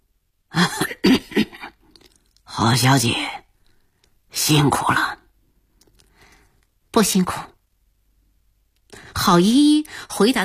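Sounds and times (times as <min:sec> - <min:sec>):
man holding a cigar coughing: 0:00.5 - 0:01.8
speech: 0:02.6 - 0:03.4, 0:04.5 - 0:05.2, 0:07.0 - 0:07.5, 0:09.3 - 0:10.4.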